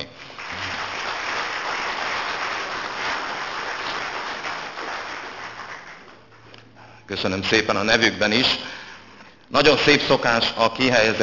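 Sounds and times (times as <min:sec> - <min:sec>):
audience applause: 0:00.3 - 0:06.5
speech: 0:07.1 - 0:08.7, 0:09.5 - 0:11.2.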